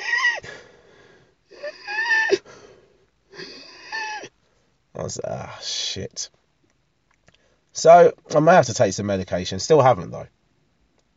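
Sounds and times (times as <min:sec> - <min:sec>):
voice imitating strained high-pitched wheezing breath: 0:00.0 - 0:04.3
speech: 0:05.1 - 0:06.4, 0:07.8 - 0:10.4.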